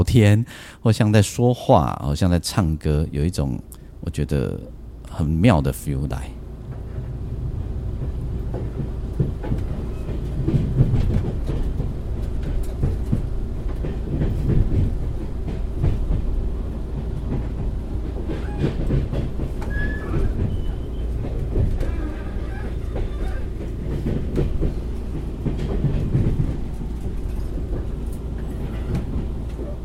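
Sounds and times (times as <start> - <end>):
speech: 0.1 - 6.4
train wheels clacking on rails: 3.3 - 29.8
rhythmic knocks of train wheels on rails: 7.9 - 29.7.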